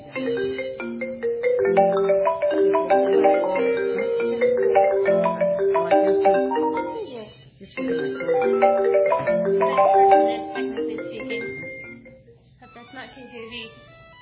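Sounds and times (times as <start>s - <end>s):
cell phone ringtone melody: 0.0s - 12.4s
low room murmur: 2.2s - 11.7s.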